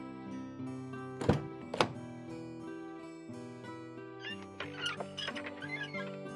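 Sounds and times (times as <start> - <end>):
steady music: 0.0 - 6.3
car door latch and handle clunks: 1.2 - 2.0.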